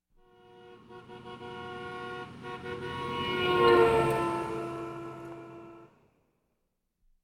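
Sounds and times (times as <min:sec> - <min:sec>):
car passing by: 0:00.4 - 0:06.2.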